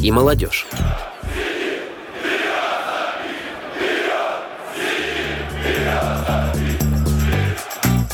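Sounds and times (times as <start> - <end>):
speech: 0.0 - 1.5
large stadium crowd chanting a football club chant: 0.5 - 8.1
steady drumbeat or rhythmic clapping: 5.3 - 8.1.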